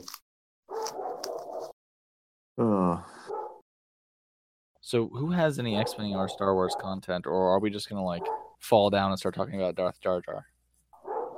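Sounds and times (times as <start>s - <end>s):
several dogs barking: 0.7s - 1.7s, 3.2s - 3.6s, 5.7s - 7.1s, 8.1s - 8.6s, 11.0s - 11.3s
speech: 2.6s - 3.1s, 4.9s - 10.5s.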